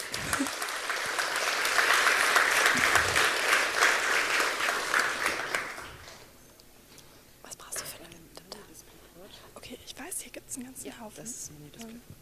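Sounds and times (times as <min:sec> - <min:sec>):
audience applause for a performer coming onto the stage at a live event: 0:00.0 - 0:06.3.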